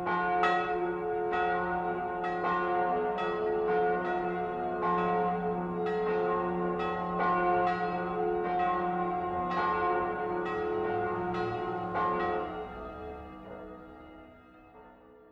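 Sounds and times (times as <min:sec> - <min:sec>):
bells ringing: 0:00.1 - 0:14.3.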